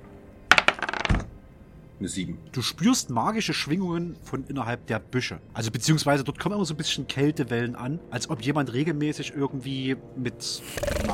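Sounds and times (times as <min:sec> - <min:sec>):
dice rattling across a tabletop: 0:00.5 - 0:01.3
speech: 0:02.0 - 0:11.1.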